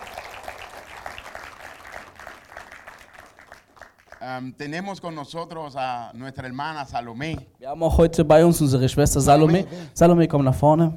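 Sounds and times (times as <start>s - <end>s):
crowd applauding: 0.0s - 4.4s
speech: 4.2s - 10.9s.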